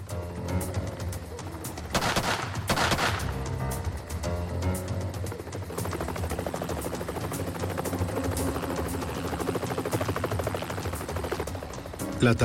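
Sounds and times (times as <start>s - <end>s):
helicopter rotor chopping overhead: 0.0s - 12.4s
sniper gunfire: 1.9s - 3.4s
speech: 12.2s - 12.4s.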